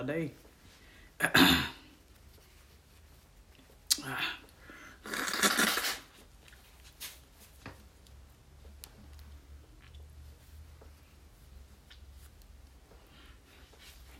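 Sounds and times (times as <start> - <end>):
speech: 0.0 - 0.4, 1.2 - 1.7
person blowing nose in cold weather: 4.9 - 6.2.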